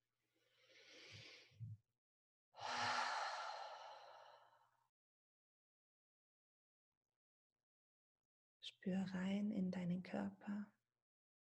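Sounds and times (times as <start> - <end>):
person breathing deeply in a quiet setting: 2.6 - 4.7
speech: 8.6 - 10.8.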